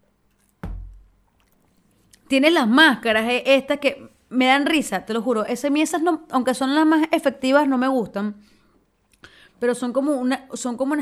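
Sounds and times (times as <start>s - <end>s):
person sipping a drink: 1.3s - 2.3s
speech: 2.3s - 8.6s, 9.6s - 11.0s.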